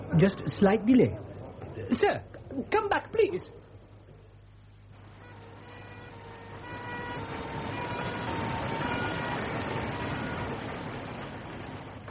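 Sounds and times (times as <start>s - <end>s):
dense rumble of traffic: 0.0s - 12.0s
speech: 0.2s - 3.7s
ambulance siren wailing: 5.1s - 11.5s.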